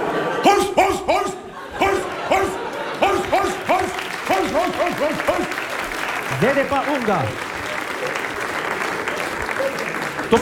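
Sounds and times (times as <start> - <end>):
laughter: 0.0 - 10.4
police dog barking deep and loud: 0.4 - 5.5
speech: 6.4 - 7.5.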